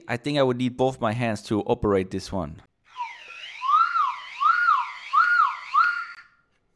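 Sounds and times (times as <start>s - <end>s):
speech: 0.1s - 2.7s
3D-printed whistle blown in warbling siren-like swoops: 2.9s - 6.4s.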